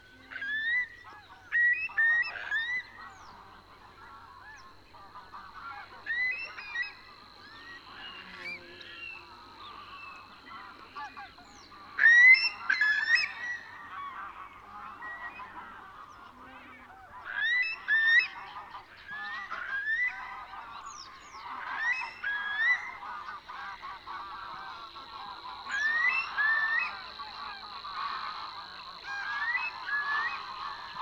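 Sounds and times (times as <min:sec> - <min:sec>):
Eurasian curlew Numenius arquata calling: 0:00.0 - 0:30.9.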